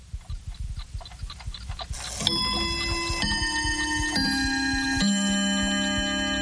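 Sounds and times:
old clock ticking: 0.1s - 6.4s
ringing melodic clock chimes: 2.0s - 6.4s.

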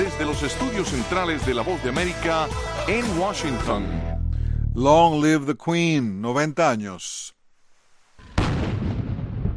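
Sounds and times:
speech: 0.2s - 4.0s, 4.8s - 7.4s
cannon fire from a gun salute for a monarch's birthday in London: 8.3s - 9.5s.

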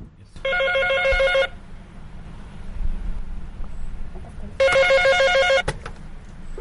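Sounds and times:
landline telephone ringing: 0.4s - 1.6s, 4.6s - 5.7s.

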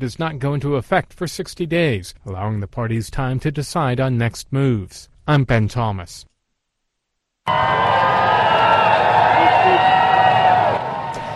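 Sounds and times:
speech: 0.0s - 6.3s, 7.5s - 8.2s
large crowd cheering and shouting at a royal arrival: 7.5s - 11.3s.

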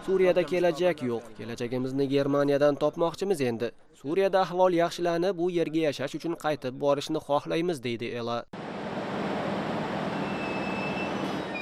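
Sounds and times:
speech: 0.0s - 8.8s
high-pitched train wheel squeals: 10.0s - 11.6s.

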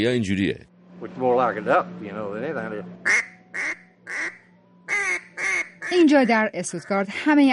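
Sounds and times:
speech: 0.0s - 3.3s, 5.9s - 7.5s
old-style duck call whistle imitating duck quacks: 3.1s - 6.0s.

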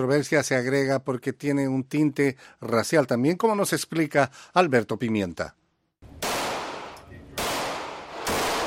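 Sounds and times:
speech: 0.0s - 5.6s
gunfire at an outdoor shooting range in Summerville, South Carolina: 6.1s - 8.6s.

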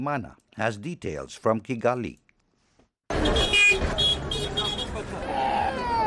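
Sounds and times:
speech: 0.0s - 2.2s
short car horn toots: 3.1s - 5.0s
crowd babble at a bus station: 3.1s - 6.0s
steady roar of traffic at a bus station: 3.1s - 6.0s.

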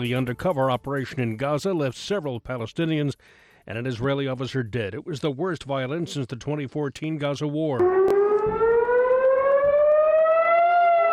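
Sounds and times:
speech: 0.0s - 8.7s
air raid siren wailing: 7.8s - 11.1s.

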